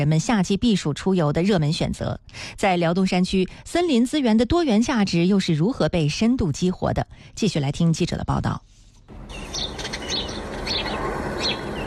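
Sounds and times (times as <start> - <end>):
speech: 0.0 - 8.7
birds singing in a forest valley in Liaoning China: 9.1 - 11.8.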